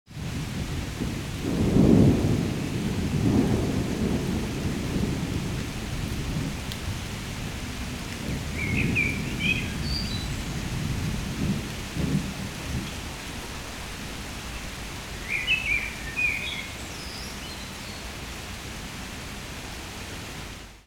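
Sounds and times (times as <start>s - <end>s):
thunderstorm: 0.1s - 15.8s.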